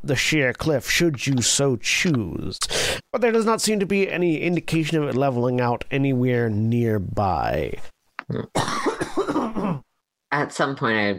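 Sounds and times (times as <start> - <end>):
speech: 0.0 - 11.1
person coughing: 8.3 - 9.9.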